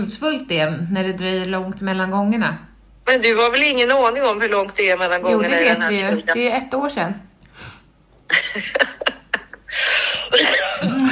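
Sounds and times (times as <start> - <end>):
speech: 0.0 - 7.7, 8.3 - 9.1
laughter: 8.3 - 11.1
person coughing: 9.7 - 11.1.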